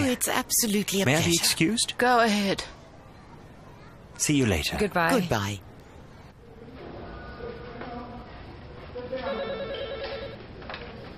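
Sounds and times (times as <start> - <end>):
murmur of noise: 0.0 - 11.1
speech: 0.1 - 2.8, 4.2 - 5.7
telephone ringing with warbling electronic tones: 9.1 - 10.4.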